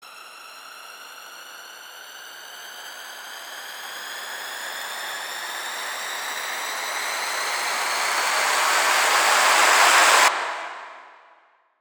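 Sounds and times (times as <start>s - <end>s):
simple moombah cinematic trailer riser: 6.5s - 11.4s.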